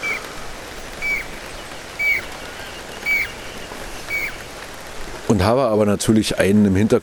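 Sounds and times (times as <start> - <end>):
short high bird call: 0.0 - 4.5
steady outdoor rain hissing: 0.0 - 6.4
speech: 5.3 - 7.0.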